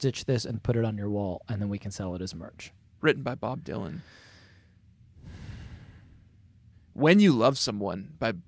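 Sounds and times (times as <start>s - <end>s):
speech: 0.0s - 4.3s, 7.0s - 8.4s
deep breath taken as a breathing exercise: 4.0s - 6.9s.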